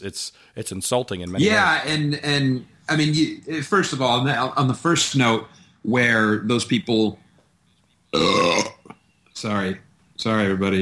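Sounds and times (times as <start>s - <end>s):
speech: 0.0s - 7.2s, 8.1s - 8.7s, 9.4s - 10.7s
person burping after a drink: 8.2s - 9.0s.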